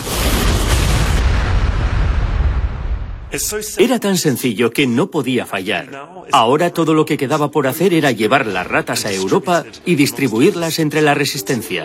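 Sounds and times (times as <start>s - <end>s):
deep rumble: 0.0s - 3.4s
loud explosion: 0.0s - 3.8s
speech: 3.3s - 11.8s.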